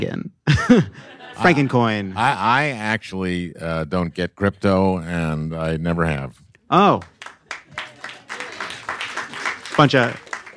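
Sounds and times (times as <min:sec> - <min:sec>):
speech: 0:00.0 - 0:07.2, 0:09.8 - 0:10.2
laughter: 0:00.5 - 0:02.4
small crowd clapping: 0:06.8 - 0:10.5.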